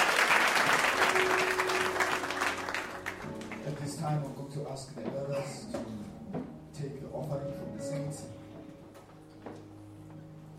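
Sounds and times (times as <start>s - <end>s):
audience clapping hands in applause: 0.0s - 4.0s
speech: 4.1s - 7.4s.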